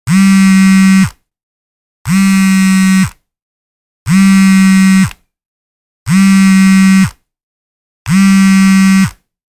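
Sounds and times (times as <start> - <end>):
telephone vibrating: 0.1 - 1.1, 2.1 - 3.1, 4.1 - 5.1, 6.1 - 7.1, 8.1 - 9.2.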